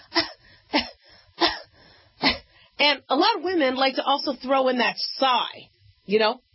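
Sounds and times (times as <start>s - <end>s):
person imitating restrained women's coughs: 0.0s - 2.5s
speech: 2.9s - 6.5s.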